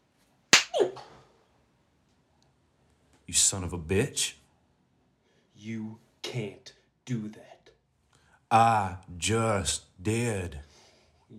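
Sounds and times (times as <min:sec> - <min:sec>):
sharp slap to a man's face: 0:00.6 - 0:00.8
speech: 0:03.3 - 0:04.4, 0:05.6 - 0:07.5, 0:08.5 - 0:10.7.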